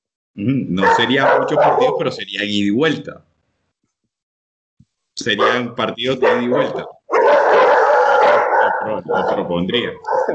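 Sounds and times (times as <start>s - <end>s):
speech: 0.4s - 3.3s, 5.2s - 7.0s, 8.8s - 10.3s
pack of street dogs barking and howling: 0.8s - 2.2s, 5.4s - 10.3s.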